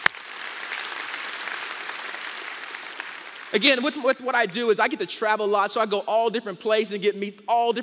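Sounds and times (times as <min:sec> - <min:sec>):
audience applause: 0:00.0 - 0:04.6
speech: 0:03.5 - 0:07.8.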